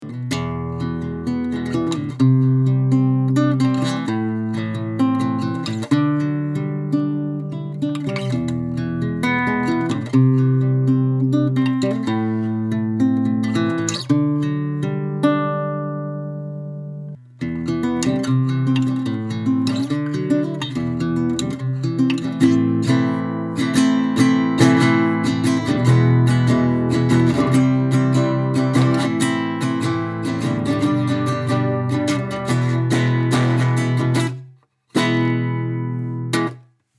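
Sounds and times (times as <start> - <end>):
guitar recorded with a USB microphone: 0.0 - 36.7.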